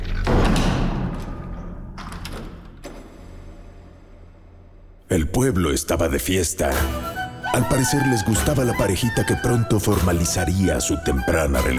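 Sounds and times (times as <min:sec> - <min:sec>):
door swinging shut with a heavy booming thud: 0:00.1 - 0:03.8
speech: 0:05.1 - 0:11.7.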